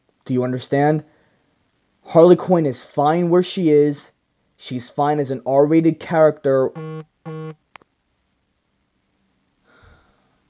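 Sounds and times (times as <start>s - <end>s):
speech: 0.3s - 1.2s, 2.1s - 7.6s
phone notification buzz: 6.7s - 7.6s.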